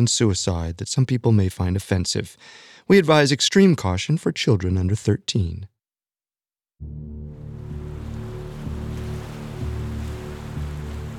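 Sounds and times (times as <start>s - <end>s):
speech: 0.0s - 5.7s, 6.8s - 7.1s
low rumbling hum: 6.8s - 11.1s
ocean waves lapping against the shore: 7.0s - 11.1s.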